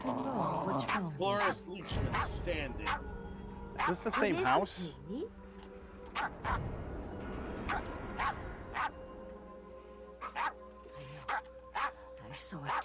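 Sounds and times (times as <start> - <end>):
dog barking sharply: 0.7 - 3.0, 3.8 - 4.2, 6.1 - 6.7, 7.7 - 9.0, 10.2 - 10.6, 11.2 - 12.0, 12.6 - 12.8
speech: 1.0 - 3.2, 3.8 - 5.4, 6.2 - 6.9, 12.4 - 12.8.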